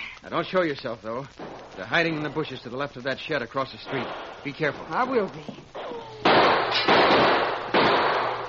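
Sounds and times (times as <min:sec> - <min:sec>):
speech: 0:00.2 - 0:05.7
loud sharp gunshots: 0:03.8 - 0:04.6, 0:05.8 - 0:08.4.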